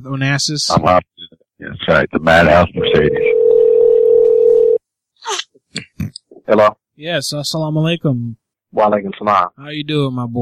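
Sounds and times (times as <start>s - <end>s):
speech: 0.0s - 1.1s, 1.9s - 3.5s, 6.5s - 10.4s
telephone dial tone while dialing a call: 3.1s - 4.8s.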